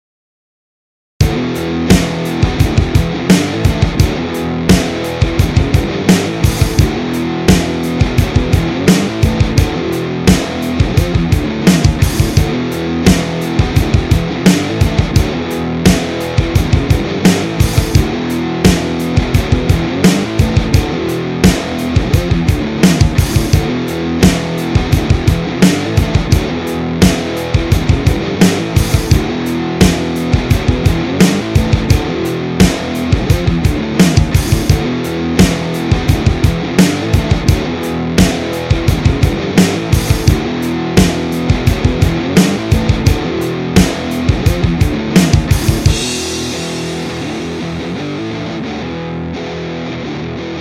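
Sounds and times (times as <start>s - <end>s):
modern rock guitar strumming: 1.2s - 50.5s.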